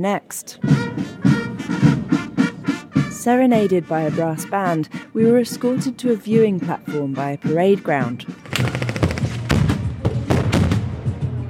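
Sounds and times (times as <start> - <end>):
speech: 0.0 - 1.3, 3.2 - 8.4
live-ammunition gunfire in a simulated military attack at a training camp: 8.4 - 11.4.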